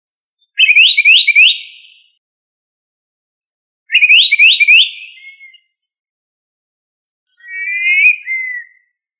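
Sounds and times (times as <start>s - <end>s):
bird trilling: 0.6s - 2.1s, 3.9s - 5.7s, 7.3s - 8.9s.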